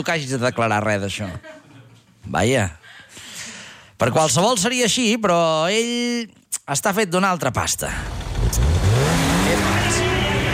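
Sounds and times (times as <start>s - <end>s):
speech: 0.0s - 1.6s, 2.2s - 3.2s, 4.0s - 10.0s
laughter: 0.6s - 2.2s
police car engine roaring as it accelerates: 7.9s - 10.5s.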